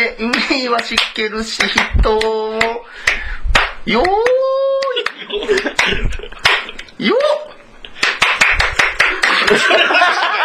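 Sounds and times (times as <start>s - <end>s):
speech: 0.2s - 4.6s, 5.3s - 6.4s, 7.0s - 7.5s, 9.5s - 10.4s
sharp rhythmic hand clapping: 0.3s - 7.4s, 8.0s - 9.8s
chatter from several people: 3.9s - 7.6s
laughter from several people: 4.8s - 8.2s, 9.0s - 10.4s.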